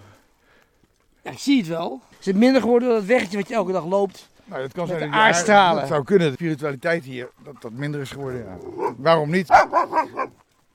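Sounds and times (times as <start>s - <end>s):
speech: 1.2s - 10.4s
sharp dog barks: 8.6s - 10.4s.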